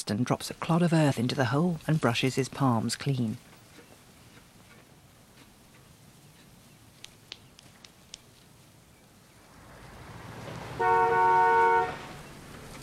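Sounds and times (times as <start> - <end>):
speech: 0.1 - 3.5
estate car engine rumble drawing up: 8.5 - 12.8
estate car horn toot: 10.8 - 12.2.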